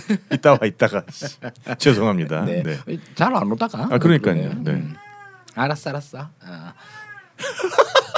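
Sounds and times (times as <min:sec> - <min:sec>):
laughter: 0:00.0 - 0:02.7, 0:07.4 - 0:08.1
speech: 0:00.0 - 0:05.0, 0:05.6 - 0:07.9
cat meowing: 0:04.6 - 0:05.5, 0:07.0 - 0:07.4.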